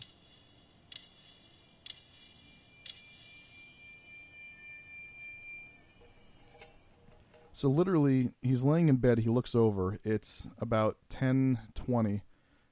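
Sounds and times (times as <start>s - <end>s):
faint high-pitched whine: 0.0s - 12.7s
clock ticking softly: 0.9s - 3.2s
speech: 7.6s - 12.3s.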